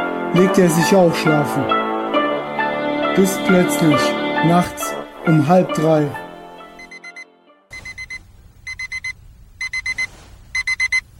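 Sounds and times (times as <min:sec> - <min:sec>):
speech: 0:00.3 - 0:01.8, 0:03.2 - 0:06.2
electronic alarm clock beeping: 0:06.8 - 0:11.0.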